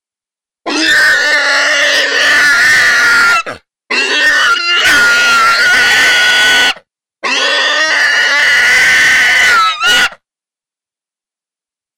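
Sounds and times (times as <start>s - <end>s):
wild boar distress squealing: 0.7s - 10.2s.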